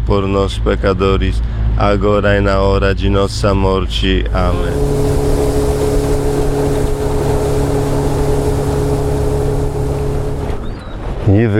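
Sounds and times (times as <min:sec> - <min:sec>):
speech: 0:00.1 - 0:05.3, 0:11.3 - 0:11.5
motorboat engine droning on water: 0:04.0 - 0:11.2
wind noise: 0:04.2 - 0:11.5
rushing water: 0:04.3 - 0:10.8.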